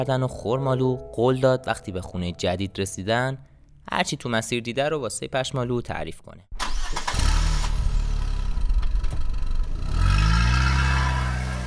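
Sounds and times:
speech: 0:00.0 - 0:06.6
car engine cranking and catching: 0:06.6 - 0:11.6
car engine idling with a steady low rumble: 0:06.8 - 0:09.9.

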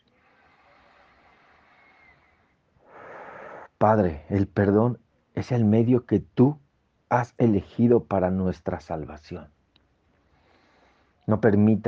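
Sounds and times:
person breathing slowly during guided meditation: 0:00.0 - 0:03.8, 0:10.3 - 0:11.2
speech: 0:03.8 - 0:09.6, 0:11.3 - 0:11.8.

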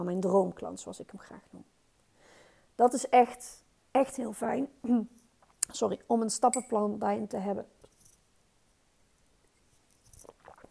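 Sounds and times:
speech: 0:00.0 - 0:01.7, 0:02.8 - 0:07.8
person sipping water with faint slurps: 0:09.9 - 0:10.7
soft swallow of water: 0:10.2 - 0:10.7.

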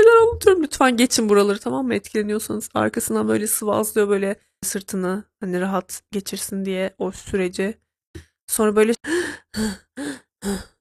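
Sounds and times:
speech: 0:00.7 - 0:10.7
person imitating the rattling gasps of a dying person: 0:09.0 - 0:10.7.

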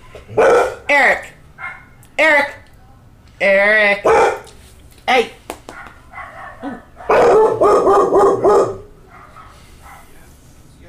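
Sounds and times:
low rumble of noise: 0:00.0 - 0:10.8
speech: 0:00.2 - 0:01.4, 0:02.2 - 0:02.6, 0:03.4 - 0:04.4, 0:05.1 - 0:05.4, 0:07.6 - 0:08.8
dog barking: 0:00.3 - 0:00.9, 0:01.6 - 0:02.0, 0:04.0 - 0:04.6, 0:05.7 - 0:10.2
dog yelp: 0:00.3 - 0:02.0, 0:04.0 - 0:04.5, 0:05.8 - 0:10.1.

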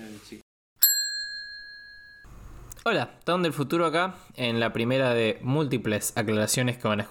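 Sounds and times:
phone sounding a single bright electronic ding for an incoming call: 0:00.8 - 0:02.3
speech: 0:02.8 - 0:07.0.

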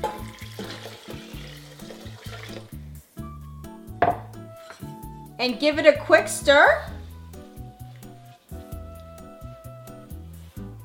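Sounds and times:
speech: 0:00.0 - 0:00.4, 0:05.4 - 0:06.9
liquid pouring into a pot of short-grain sticky white rice: 0:00.0 - 0:02.8.

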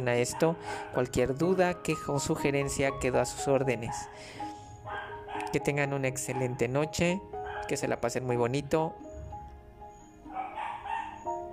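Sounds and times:
speech: 0:00.0 - 0:04.4, 0:05.5 - 0:09.1
dogs barking: 0:00.1 - 0:01.5, 0:03.9 - 0:08.0, 0:10.2 - 0:11.5.

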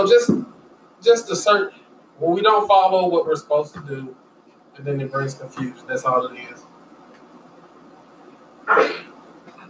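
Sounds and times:
speech: 0:00.0 - 0:04.2, 0:04.8 - 0:06.6, 0:08.7 - 0:09.1
sneeze: 0:08.6 - 0:09.2.

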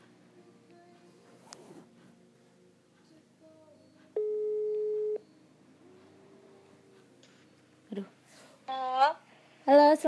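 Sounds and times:
faint room noise: 0:00.0 - 0:10.0
phone's outgoing ringing tone as a call is placed: 0:04.2 - 0:05.3
speech: 0:08.0 - 0:08.8.

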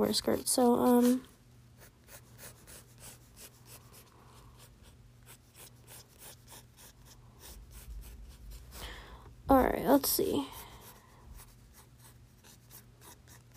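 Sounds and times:
speech: 0:00.0 - 0:01.3, 0:09.5 - 0:10.6
pencil drawing on paper: 0:01.8 - 0:08.8, 0:10.3 - 0:13.5.

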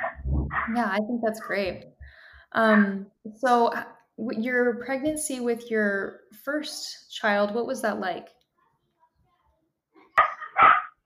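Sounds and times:
speech: 0:00.7 - 0:08.4
excited dog barking: 0:10.2 - 0:11.0.

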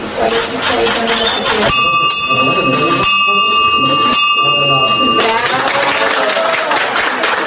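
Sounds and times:
indistinct voices murmuring: 0:00.0 - 0:07.3
speech: 0:00.2 - 0:04.8
victory bell rung at a university hospital in Santander: 0:01.6 - 0:06.7.

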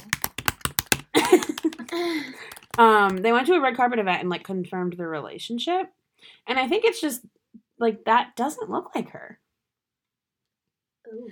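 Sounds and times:
crisp computer keyboard key clicks: 0:00.0 - 0:03.2
speech: 0:02.0 - 0:09.4, 0:11.1 - 0:11.3.

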